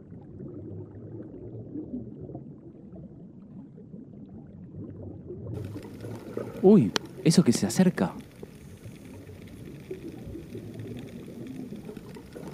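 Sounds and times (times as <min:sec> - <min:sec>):
underwater rumbling and bubbling gurgles beneath the sea: 0:00.0 - 0:12.5
faint bright hiss: 0:05.6 - 0:12.5
speech: 0:06.6 - 0:08.2.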